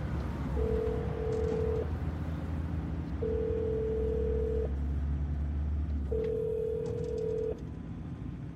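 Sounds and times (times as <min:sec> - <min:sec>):
low continuous hum: 0:00.0 - 0:08.5
telephone call ringback tones: 0:00.6 - 0:01.9, 0:03.2 - 0:04.7, 0:06.1 - 0:07.6.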